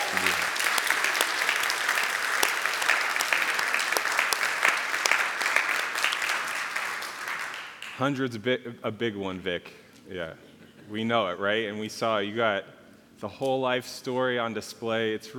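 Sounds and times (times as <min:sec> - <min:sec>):
sustained applause from a sizable audience: 0:00.0 - 0:08.0
speech: 0:08.0 - 0:15.3.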